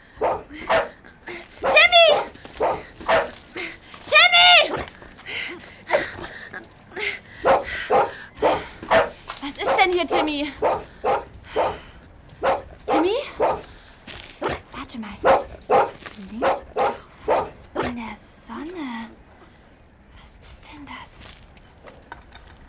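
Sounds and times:
dog barking excitedly in front of a storage shed: 0:00.0 - 0:05.0, 0:05.9 - 0:06.6, 0:07.4 - 0:13.8, 0:14.4 - 0:18.0.

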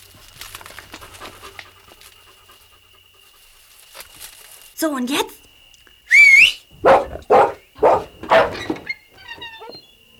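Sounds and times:
speech: 0:04.8 - 0:05.4
high tonal call: 0:06.1 - 0:06.7
Doberman barking: 0:06.8 - 0:08.7
Doberman whimpering: 0:08.6 - 0:10.0.

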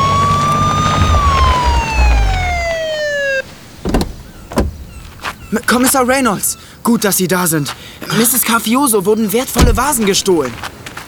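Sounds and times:
police siren wailing: 0:00.0 - 0:04.5
short thuds: 0:00.0 - 0:06.1, 0:09.5 - 0:10.7
police car engine rumbling: 0:00.0 - 0:06.4, 0:09.5 - 0:10.6
speech: 0:05.6 - 0:10.8.

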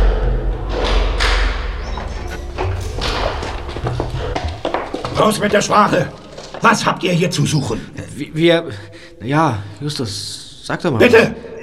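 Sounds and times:
low rumble: 0:00.0 - 0:07.1
door being unlocked and opened: 0:01.2 - 0:06.7
speech: 0:05.2 - 0:11.5.

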